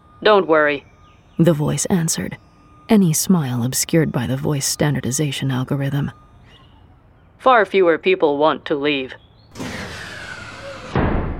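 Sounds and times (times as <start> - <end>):
speech: 0.2 - 6.3, 7.4 - 9.8
sliding door hissing and whirring with a faint falling tone: 9.5 - 11.3
sliding door stopping with a heavy low thud: 10.9 - 11.3.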